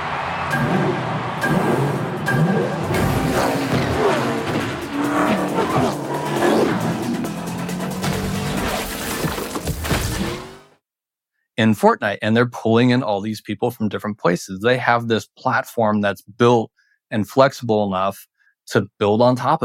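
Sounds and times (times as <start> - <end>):
racing car engines revving in a video game: 0.0 - 9.6
speech: 11.6 - 19.6.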